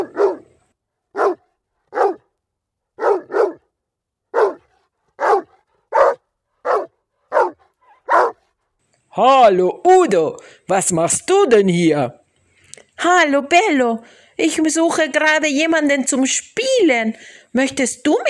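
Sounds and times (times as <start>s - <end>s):
dog barking loudly: 0.0s - 2.4s, 3.0s - 8.6s
speech: 9.2s - 12.2s, 13.0s - 18.2s.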